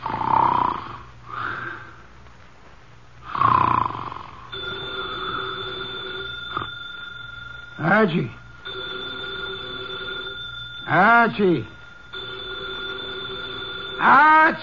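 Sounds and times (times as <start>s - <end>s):
man snoring through the nose in a chair in an office: 0.0s - 1.8s, 3.2s - 4.4s
desk telephone ringing in an office: 4.5s - 14.6s
speech: 8.0s - 8.4s, 10.9s - 11.8s, 14.0s - 14.6s.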